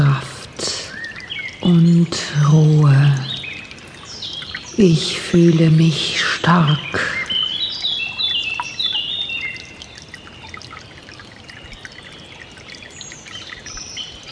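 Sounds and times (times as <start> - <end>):
gently babbling brook: 0.0 - 14.3
birds chirping and singing: 1.0 - 1.8, 3.0 - 5.8, 6.6 - 10.6, 11.6 - 14.3
speech: 4.8 - 7.1.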